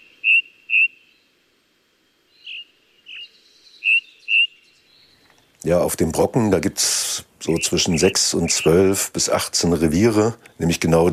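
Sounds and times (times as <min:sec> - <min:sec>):
ring ouzel singing on a mountain summit where the forest ends: 0:00.0 - 0:01.2, 0:02.4 - 0:05.6, 0:07.4 - 0:08.9
speech: 0:05.7 - 0:11.1.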